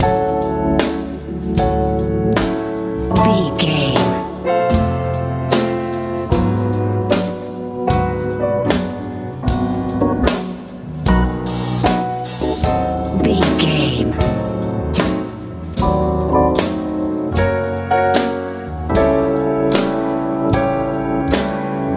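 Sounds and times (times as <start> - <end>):
live jazz with powerful echo: 0.0 - 21.9.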